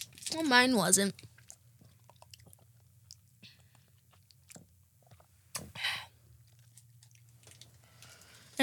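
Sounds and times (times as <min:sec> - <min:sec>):
speech: 0:00.3 - 0:01.3
chewing crunchy candy: 0:01.2 - 0:05.7, 0:06.4 - 0:08.1.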